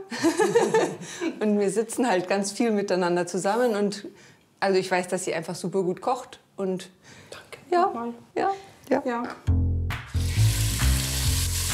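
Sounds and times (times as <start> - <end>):
speech: 0.2 - 9.6
finely diced lamb hearts sizzling in clarified butter: 10.2 - 11.7.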